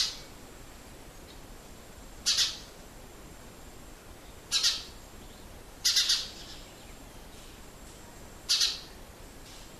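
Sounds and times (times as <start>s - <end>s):
faint background hiss: 0.0s - 9.7s
house sparrow Passer domesticus chirping: 2.2s - 2.7s, 4.5s - 7.5s, 8.5s - 8.9s.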